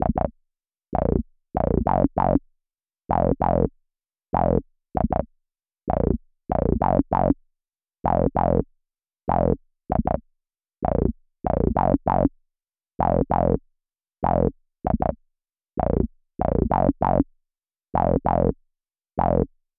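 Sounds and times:
West Coast bass melody loop in A sharp minor: 0:00.0 - 0:00.3, 0:01.0 - 0:02.4, 0:03.1 - 0:03.7, 0:04.4 - 0:05.3, 0:05.9 - 0:07.4, 0:08.0 - 0:08.6, 0:09.3 - 0:10.2, 0:10.8 - 0:12.3, 0:13.0 - 0:13.6, 0:14.2 - 0:15.2, 0:15.8 - 0:17.3, 0:18.0 - 0:18.6, 0:19.2 - 0:19.6.

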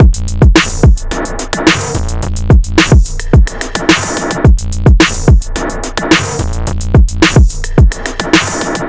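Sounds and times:
experimental drum loop: 0:00.0 - 0:08.8.

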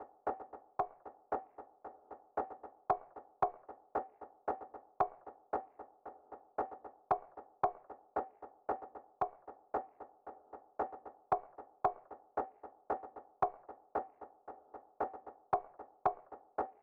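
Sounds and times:
percussion drum loop: 0:00.0 - 0:16.8.

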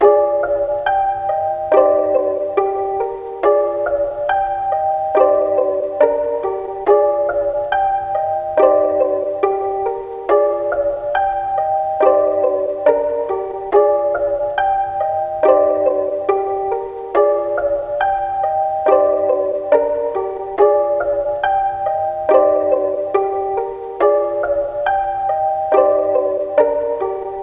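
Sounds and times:
C minor plucks at 140 BPM: 0:00.0 - 0:27.4.

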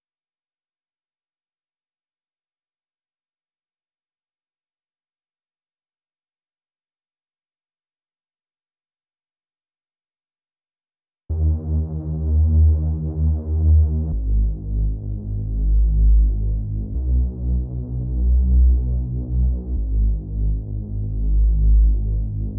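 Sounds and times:
D sharp minor bass loop: 0:11.3 - 0:22.5.

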